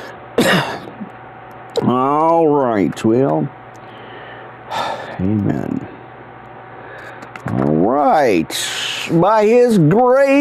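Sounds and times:
sharp cough: 0.4s - 1.0s
speech: 0.5s - 0.8s, 1.8s - 3.6s, 5.2s - 6.0s, 7.4s - 10.3s
faint trailing grunt: 4.7s - 5.9s.

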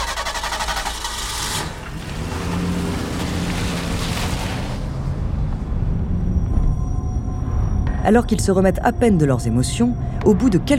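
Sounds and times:
car engine roaring as the car accelerates and pulls away: 0.0s - 8.0s
speech: 8.1s - 10.7s.

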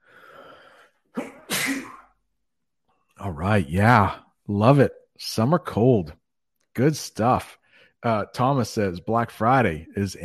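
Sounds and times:
person sneezing: 1.1s - 2.1s
speech: 3.2s - 6.2s, 6.8s - 10.2s.

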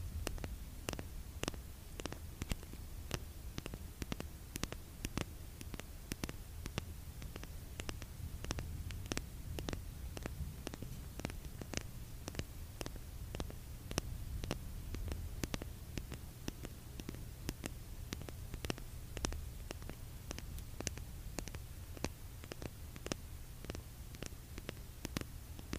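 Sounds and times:
lipgloss tubes tapped into a microphone: 0.2s - 25.7s.

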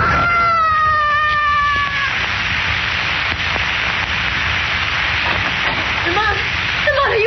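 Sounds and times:
man screaming while falling: 0.0s - 2.2s
constant hiss: 0.0s - 7.2s.

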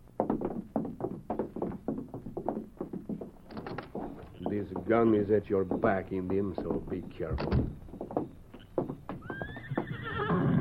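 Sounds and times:
horse hooves clopping: 0.0s - 10.5s
speech: 4.6s - 7.8s
paint horse whinnying with a rising wavering neigh: 8.6s - 10.5s.

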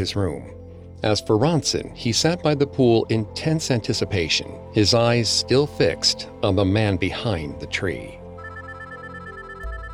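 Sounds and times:
speech: 0.0s - 8.2s
mobile phone ringtone with electronic melody: 8.4s - 9.9s.

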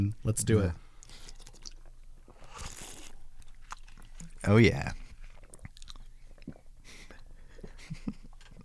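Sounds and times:
speech: 0.0s - 0.8s, 4.4s - 5.0s
slurping cereal milk from a bowl: 1.0s - 4.2s
mouth and chewing noises: 1.0s - 4.4s, 5.0s - 8.6s.

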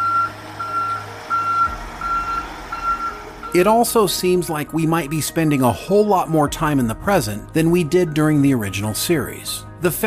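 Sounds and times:
dump truck reversing alarm beeps: 0.0s - 4.1s
dump truck low diesel engine rumble: 0.0s - 5.6s
speech: 3.6s - 10.0s.

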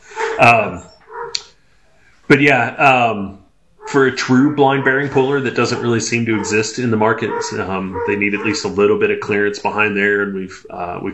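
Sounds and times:
dog barking excitedly in a workshop: 0.1s - 1.4s, 3.8s - 8.8s
speech: 0.4s - 0.9s, 2.3s - 11.1s.

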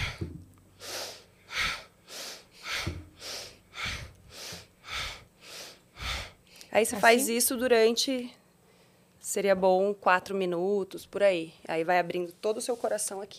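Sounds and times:
person breathing in and out during a breathing exercise: 0.0s - 6.8s
speech: 6.8s - 8.4s, 9.3s - 13.3s.

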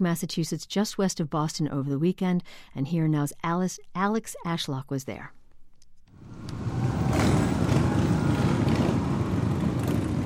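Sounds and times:
speech: 0.0s - 5.4s
many motorcycles roaring past: 6.2s - 10.2s.

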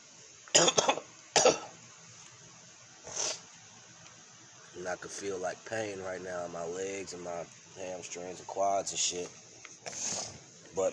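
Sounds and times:
harsh hacking cough: 0.5s - 1.7s
speech: 0.6s - 1.6s, 4.8s - 10.2s, 10.8s - 10.9s.

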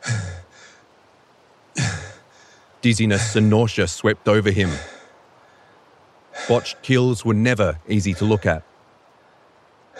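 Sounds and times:
man panting after a struggle: 1.8s - 3.4s, 4.6s - 6.8s
speech: 2.8s - 4.9s, 6.5s - 8.7s.

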